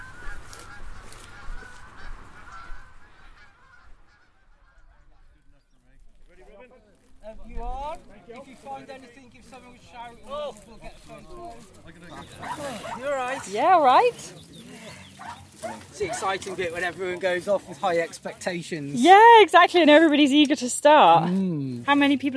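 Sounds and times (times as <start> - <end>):
flock of geese honking: 0.0 - 5.4, 11.1 - 18.5
speech: 7.4 - 14.4, 15.7 - 22.3.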